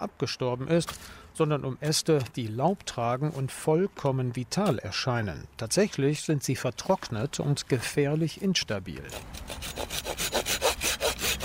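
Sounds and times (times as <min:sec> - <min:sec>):
speech: 0:00.0 - 0:10.6
hand saw cutting through very dry branch wood: 0:09.0 - 0:11.4.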